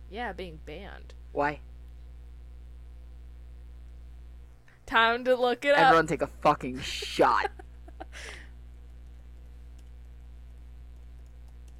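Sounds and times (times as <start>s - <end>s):
steady low electrical hum: 0.0s - 11.7s
speech: 0.1s - 1.7s, 4.9s - 8.4s
computer keyboard clicks: 8.9s - 11.7s.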